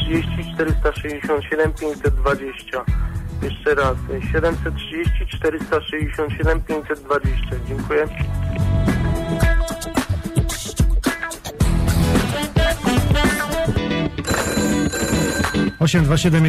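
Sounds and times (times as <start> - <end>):
dense full musical backing: 0.0 - 14.8
speech: 0.1 - 8.7, 15.8 - 16.4
telephone bell ringing loudly: 14.2 - 16.0.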